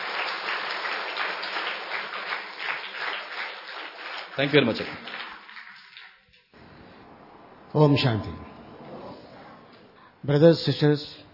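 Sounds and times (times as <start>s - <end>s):
audience clapping at a talk: 0.0s - 6.5s
speech: 4.4s - 5.2s, 7.8s - 8.5s, 10.2s - 11.2s.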